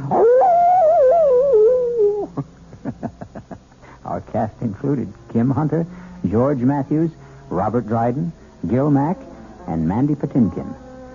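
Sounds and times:
wolf howling: 0.0 - 2.4, 9.0 - 11.1
speech: 4.3 - 10.8.

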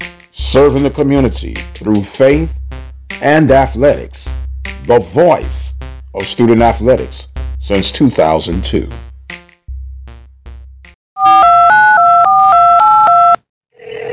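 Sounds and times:
speech: 0.5 - 2.6, 3.2 - 4.2, 4.8 - 9.1
soft low thumps: 7.2 - 7.8, 8.6 - 10.9
touch-tone telephone dialing beeps: 11.2 - 13.4.

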